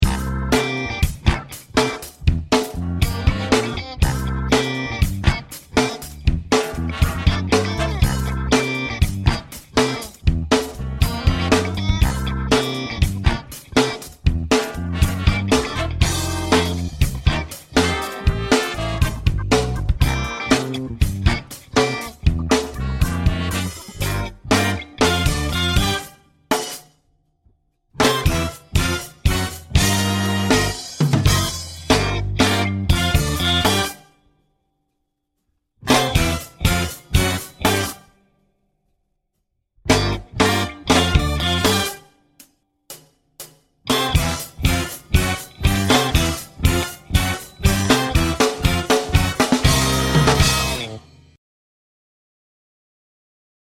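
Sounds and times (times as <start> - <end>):
funky shuffle music: 0.0 - 26.8, 28.0 - 34.0, 35.8 - 38.1, 39.8 - 42.1, 43.9 - 51.3.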